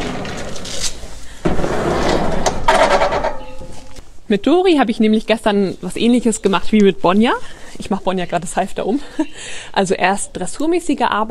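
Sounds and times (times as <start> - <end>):
door scraping and creaking open or shut: 0.0 - 4.0
sudden rough clatter: 0.0 - 4.0
speech: 4.3 - 11.2.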